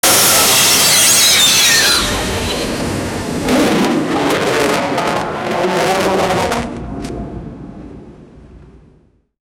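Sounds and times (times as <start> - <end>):
plane crash: 0.0 - 8.9.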